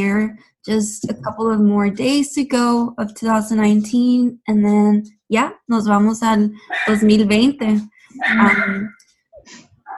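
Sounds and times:
speech: 0.0 - 9.6
whiny drawn-out dog bark: 6.7 - 7.0, 8.2 - 8.9.

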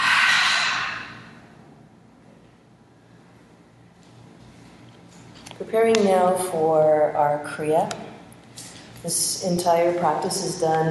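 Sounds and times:
deep exhale during a breathing exercise: 0.0 - 1.5
speech: 5.7 - 8.0, 9.0 - 10.9.

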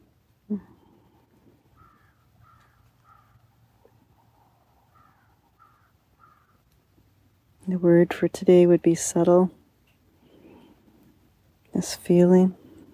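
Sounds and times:
low steady hum: 0.0 - 12.9
speech: 0.5 - 0.8, 7.7 - 9.6, 11.8 - 12.6
crows cawing: 1.7 - 3.5, 4.9 - 6.7.

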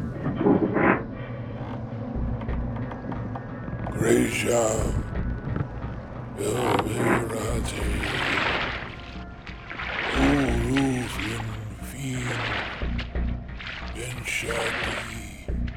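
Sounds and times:
water sloshing and splashing as a small rowboat is towed ashore through shallows: 0.0 - 15.7
indistinct voice-like sounds: 3.8 - 5.7, 6.3 - 9.0, 10.1 - 12.9, 14.0 - 15.6
speech: 4.0 - 5.1, 6.4 - 8.5, 14.4 - 15.0.

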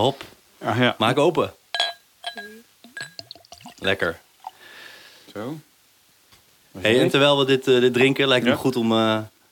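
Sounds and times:
speech: 0.0 - 1.6, 3.8 - 4.2, 5.3 - 5.7, 6.8 - 9.3
glass clinking: 1.7 - 4.6
Johnnie Walker Black Label whisky glugging and splashing as poured: 2.9 - 4.6.

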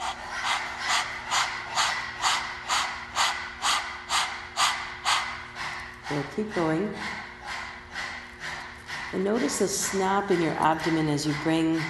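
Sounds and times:
person with tongue out panting like a dog in a breathing exercise: 0.0 - 11.8
speech: 6.1 - 7.2, 9.1 - 11.8.

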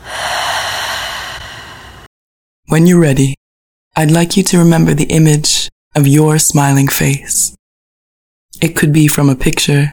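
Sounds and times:
deep breath during a guided meditation: 0.0 - 2.1
speech: 2.8 - 3.4, 4.0 - 7.6, 8.6 - 9.9.

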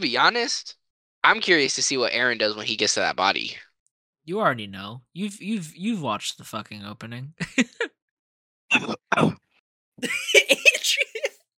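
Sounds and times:
speech: 0.0 - 7.9, 8.7 - 9.4, 10.0 - 11.4
laughter: 7.4 - 7.9, 10.0 - 11.4
person coughing: 8.7 - 9.4, 10.0 - 11.4.

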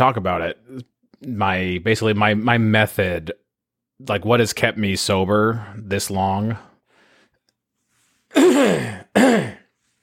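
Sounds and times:
speech: 0.0 - 3.4, 4.0 - 6.7, 8.3 - 9.5
person coughing with harsh rasping bursts: 8.3 - 9.8.

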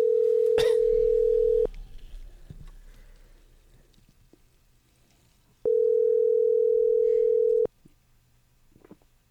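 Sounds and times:
telephone tone while a call goes through: 0.0 - 1.7, 5.7 - 7.7.

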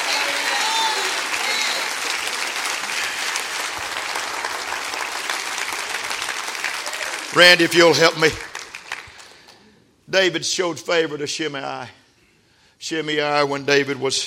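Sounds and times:
scattered cheers: 0.0 - 3.2, 6.7 - 7.4
large gathering clapping in applause: 0.0 - 9.6
speech: 7.4 - 8.5, 10.1 - 12.0, 12.8 - 14.2.

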